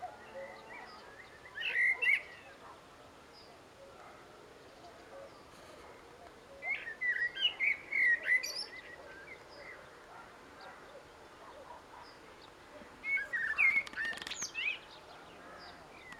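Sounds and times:
faint background birds: 0.0 - 16.1
common blackbird Turdus merula singing fluty warbles and whistled notes: 0.2 - 2.7, 6.6 - 9.9, 10.6 - 16.1.

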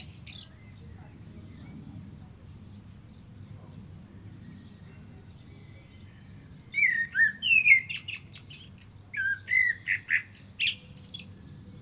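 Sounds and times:
common blackbird Turdus merula singing: 0.0 - 11.8.

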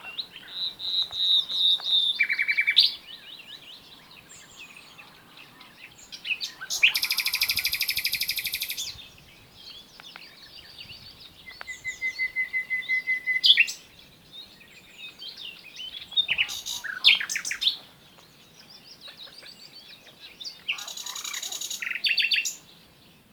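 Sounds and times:
common nightingale Luscinia megarhynchos song: 0.0 - 23.3.

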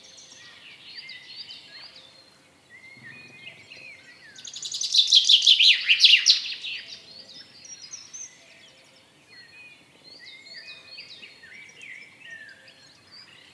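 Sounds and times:
common chaffinch (Fringilla coelebs) singing: 2.8 - 6.9.

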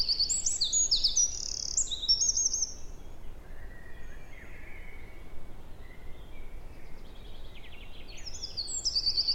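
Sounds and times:
Eurasian wren Troglodytes troglodytes singing: 0.0 - 2.9, 7.5 - 9.3
background hiss: 0.0 - 9.3.

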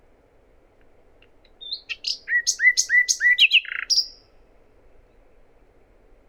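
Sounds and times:
Common nightingale song: 1.2 - 4.3.

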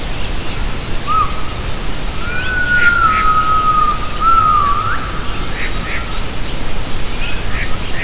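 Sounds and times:
low background hiss: 0.0 - 8.0
gibbon whistled call: 2.2 - 5.1.

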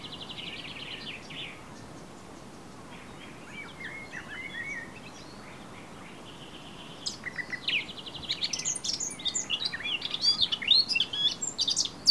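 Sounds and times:
Eurasian blackcap Sylvia atricapilla warbling song: 0.0 - 12.0.

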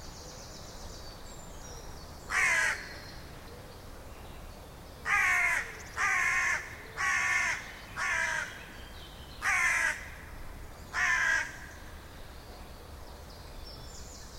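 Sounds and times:
carrion crow Corvus corone cawing hoarsely: 2.3 - 3.0, 5.1 - 8.6, 9.4 - 10.3, 10.9 - 11.8.

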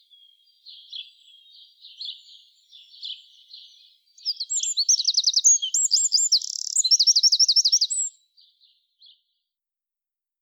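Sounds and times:
Eurasian wren Troglodytes troglodytes singing: 0.0 - 8.2.

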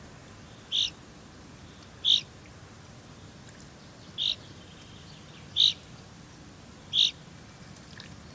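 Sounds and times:
low background hiss: 0.0 - 8.3
common chaffinch Fringilla coelebs calls: 0.4 - 1.0, 1.6 - 2.3, 3.8 - 5.9, 6.9 - 7.2.

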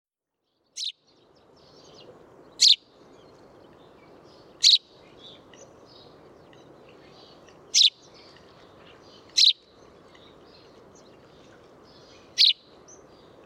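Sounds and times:
constant low background noise: 0.3 - 13.4
house sparrow Passer domesticus chirping: 0.7 - 13.4.

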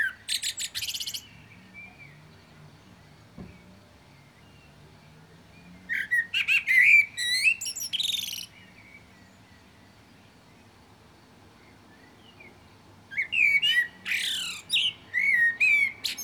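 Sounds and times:
common blackbird singing: 0.0 - 4.8, 5.5 - 9.7, 13.1 - 16.2.

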